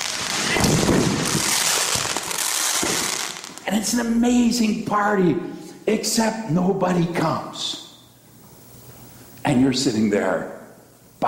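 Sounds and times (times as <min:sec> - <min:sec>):
fireworks exploding in a dense barrage of crackles and pops: 0:00.0 - 0:03.7
speech: 0:03.7 - 0:07.8, 0:09.5 - 0:10.6.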